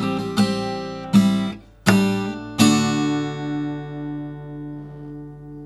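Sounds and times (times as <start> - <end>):
metal guitar recorded with Audio-Technica ATR-1200 dynamic cardioid microphone: 0.2 - 4.0.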